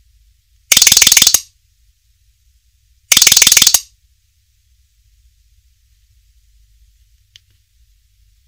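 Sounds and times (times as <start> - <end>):
Nokia mobile phone ringtone: 0.7 - 1.4, 3.1 - 3.8.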